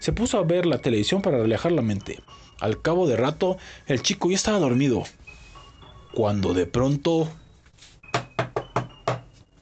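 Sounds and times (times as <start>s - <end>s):
speech: 0.0s - 5.2s, 6.1s - 7.4s
knocking on a door: 8.1s - 9.3s.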